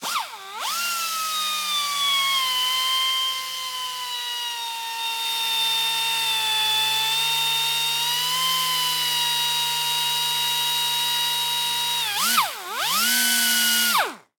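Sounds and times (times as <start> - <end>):
industrial electric sander grinding a metal surface: 0.0 - 14.3.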